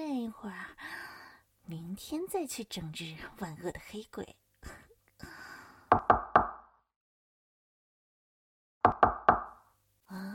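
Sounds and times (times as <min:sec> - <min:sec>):
speech: 0:01.7 - 0:04.8
firm knocking on a door: 0:08.9 - 0:09.5.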